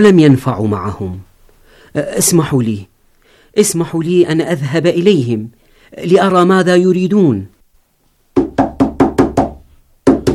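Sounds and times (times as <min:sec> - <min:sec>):
speech: 0:00.0 - 0:01.3, 0:01.9 - 0:02.9, 0:03.6 - 0:07.6
heavy pounding on a door: 0:08.4 - 0:10.3.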